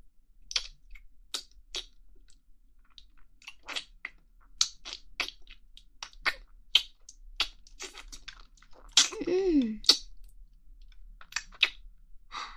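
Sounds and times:
mouth clicks and smacks eating ice cream: 0.5s - 2.0s, 2.8s - 9.2s, 9.8s - 10.4s, 11.2s - 11.8s.

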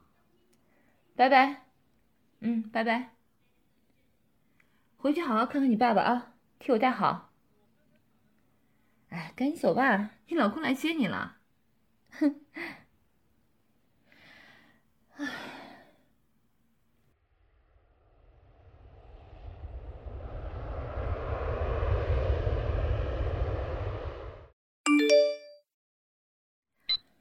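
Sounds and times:
speech: 1.2s - 1.6s, 2.4s - 3.2s, 5.0s - 7.3s, 9.1s - 11.4s, 12.1s - 12.8s
breathy sighs: 14.1s - 16.1s
airplane engine roar: 19.0s - 24.5s
short bright chime-like tone: 24.9s - 25.6s.

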